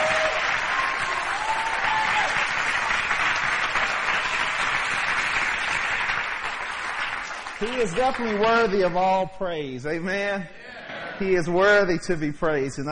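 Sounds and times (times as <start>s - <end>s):
large crowd applauding: 0.0s - 9.0s
speech: 7.6s - 10.6s, 11.2s - 12.8s.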